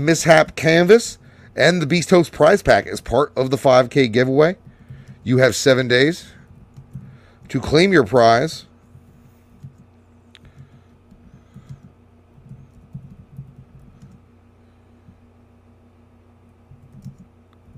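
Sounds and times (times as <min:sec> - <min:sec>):
speech: 0:00.0 - 0:04.6, 0:05.2 - 0:06.4, 0:07.5 - 0:08.7
low constant hum: 0:00.0 - 0:17.7
typing on a computer keyboard: 0:06.4 - 0:07.2, 0:09.5 - 0:14.2, 0:16.7 - 0:17.7.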